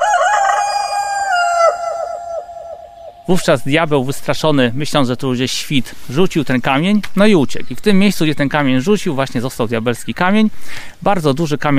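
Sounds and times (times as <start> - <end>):
rooster crowing loudly: 0.0 - 3.5
speech: 3.3 - 11.7.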